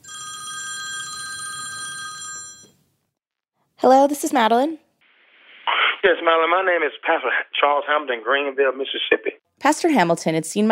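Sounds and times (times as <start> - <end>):
telephone ringing with an electronic trill: 0.0 - 2.8
speech: 3.8 - 4.8, 6.0 - 10.6.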